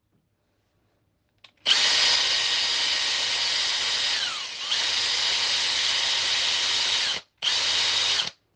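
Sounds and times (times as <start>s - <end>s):
cordless screwdriver: 1.6s - 8.4s.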